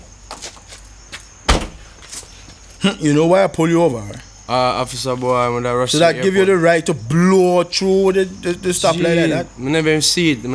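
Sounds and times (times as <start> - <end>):
car door closing at a roadside traffic stop: 1.5 - 1.9
speech: 2.8 - 10.5.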